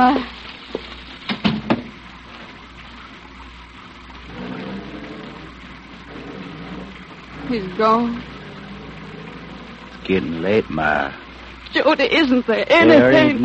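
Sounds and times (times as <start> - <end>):
speech: 0.0 - 0.4, 7.5 - 8.3, 10.1 - 13.4
steady rain: 0.0 - 13.4
short knocks and thumps: 0.7 - 2.0.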